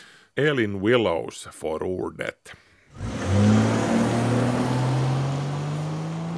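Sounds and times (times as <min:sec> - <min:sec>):
speech: 0:00.4 - 0:03.5
combustion-engine car starting up and pulling away: 0:02.9 - 0:06.3.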